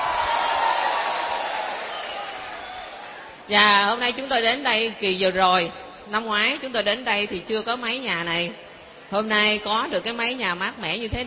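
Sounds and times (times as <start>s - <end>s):
crowd applauding: 0.0s - 3.3s
speech: 3.5s - 11.2s.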